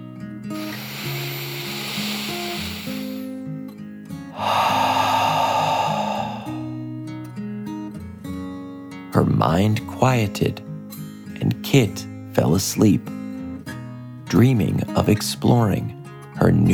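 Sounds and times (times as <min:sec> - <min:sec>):
deep slow breath in and out: 0:00.5 - 0:03.4, 0:04.3 - 0:06.8
speech: 0:09.2 - 0:10.7, 0:11.7 - 0:13.2, 0:14.3 - 0:16.7.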